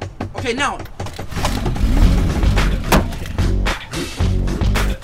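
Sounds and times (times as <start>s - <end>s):
speech: 0.4s - 1.0s
car engine cranking with faulty starter: 0.8s - 4.8s.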